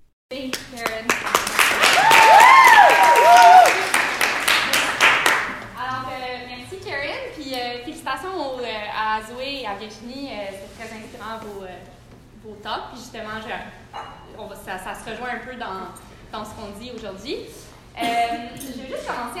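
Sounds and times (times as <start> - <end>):
audience applause in a conference hall: 1.1 - 5.7
audience cheers and whoops: 1.8 - 4.0
speech: 15.0 - 19.3.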